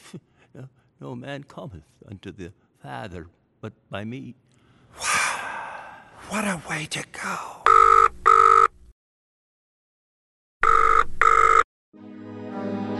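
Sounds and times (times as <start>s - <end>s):
speech: 0.1s - 5.1s, 6.3s - 7.6s
telephone ringing: 7.7s - 8.7s, 10.6s - 11.7s.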